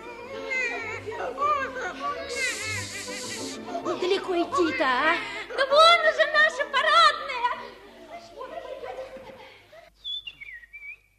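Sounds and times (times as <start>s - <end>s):
children shouting, squealing and chattering excitedly: 0.0s - 6.3s
speech: 4.2s - 6.2s
laughter: 7.5s - 10.0s.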